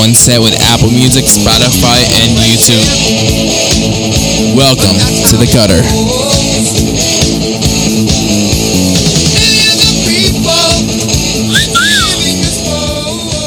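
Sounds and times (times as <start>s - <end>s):
loud busy music: 0.0s - 13.4s
speech: 0.1s - 7.1s, 8.0s - 8.2s
human wolf whistle: 11.5s - 12.4s.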